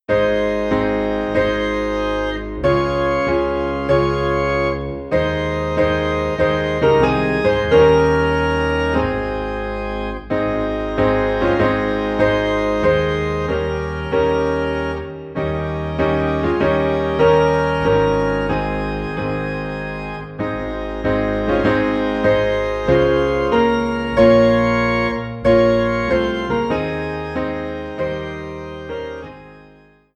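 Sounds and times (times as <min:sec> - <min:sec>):
piano in A flat: 0:00.0 - 0:30.1
organ in A flat: 0:00.1 - 0:30.1.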